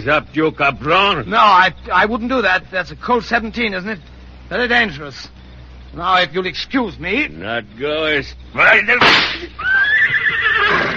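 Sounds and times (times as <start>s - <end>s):
speech: 0.0s - 9.8s
horse whinnying: 9.6s - 10.9s.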